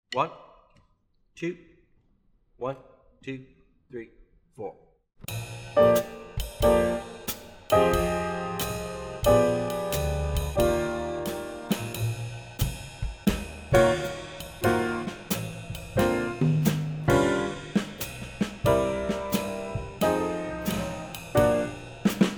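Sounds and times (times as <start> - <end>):
muted swing bass: 5.3 - 22.3.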